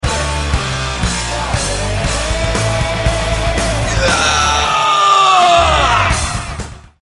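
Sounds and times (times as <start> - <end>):
heavy metal music alarm: 0.0 - 7.0.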